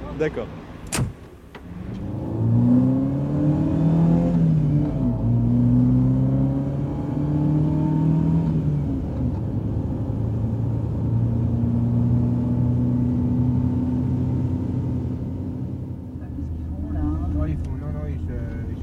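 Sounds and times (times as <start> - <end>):
car engine humming while driving: 0.0 - 18.8
road rumble: 0.0 - 18.8
speech: 0.2 - 1.2.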